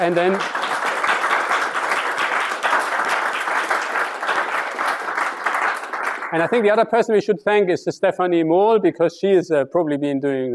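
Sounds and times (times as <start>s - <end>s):
speech: 0.0s - 0.6s, 6.3s - 10.5s
audience applause at a talk or event: 0.0s - 6.8s.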